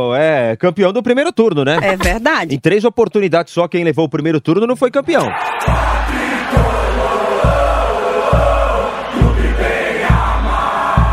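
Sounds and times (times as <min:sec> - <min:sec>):
speech: 0:00.0 - 0:06.1
football supporters chanting in a stadium: 0:05.2 - 0:11.1
deep rhythmic thumps: 0:05.7 - 0:11.1.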